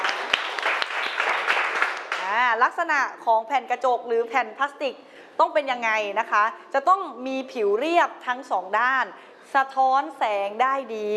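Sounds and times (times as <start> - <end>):
room full of people clapping in a classroom: 0.0 - 2.6
speech: 2.3 - 11.1.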